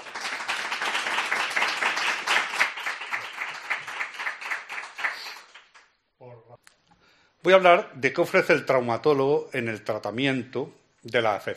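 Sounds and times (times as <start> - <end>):
crowd applauding: 0.0 - 5.9
speech: 7.4 - 11.5.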